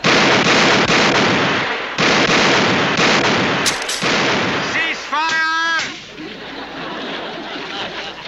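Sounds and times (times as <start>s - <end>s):
volley of gunfire fired on command: 0.0s - 6.1s
laughter: 4.9s - 8.2s.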